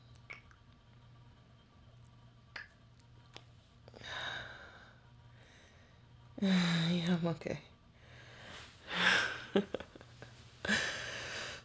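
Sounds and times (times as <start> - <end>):
mouth clicks: 0.2 - 0.6, 2.5 - 2.8
person breathing heavily catching their breath: 3.9 - 7.0, 8.0 - 9.6, 10.6 - 11.6
speech: 6.4 - 7.7.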